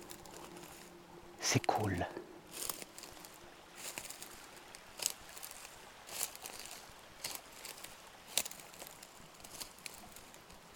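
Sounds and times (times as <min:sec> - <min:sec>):
small stream flowing past ground strewn with dried ferns and twigs: 0:00.0 - 0:10.7
speech: 0:01.5 - 0:02.3.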